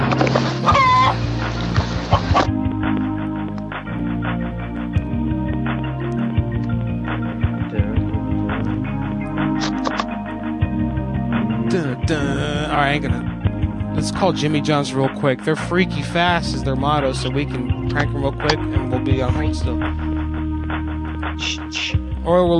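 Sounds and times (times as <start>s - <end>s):
busy rhythmic backing of tones: 0.0s - 22.5s
chicken clucking sound effect: 0.6s - 1.2s
speech: 14.2s - 20.1s, 21.4s - 21.6s, 22.3s - 22.5s.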